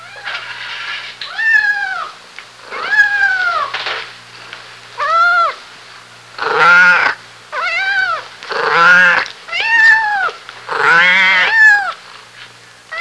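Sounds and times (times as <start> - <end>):
cat giving drawn-out wailing meows: 1.3 - 3.7, 5.0 - 5.6, 6.4 - 12.0.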